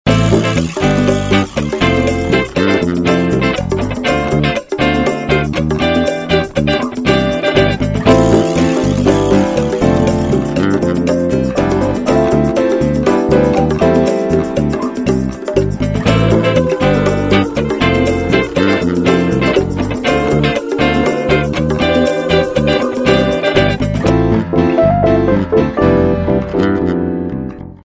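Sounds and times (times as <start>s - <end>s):
guitars: 0.1s - 27.8s.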